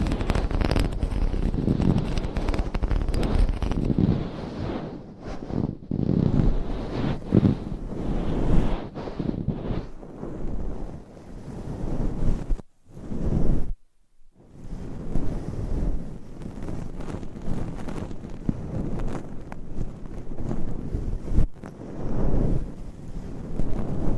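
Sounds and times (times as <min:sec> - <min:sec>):
microphone scratching and brushing: 0:00.0 - 0:13.8, 0:14.4 - 0:24.1.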